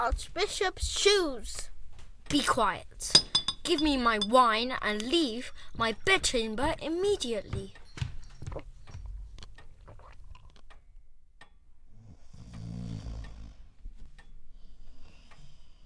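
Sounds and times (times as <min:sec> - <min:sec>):
speech: 0:00.0 - 0:01.7, 0:02.3 - 0:07.8
loud snoring: 0:11.9 - 0:13.7.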